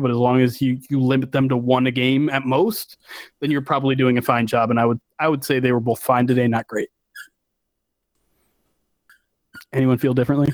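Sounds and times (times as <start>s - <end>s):
speech: 0.0s - 7.0s, 9.7s - 10.5s
squeaky toy squeaking: 7.2s - 7.4s
faint rustling hiss: 8.1s - 10.3s.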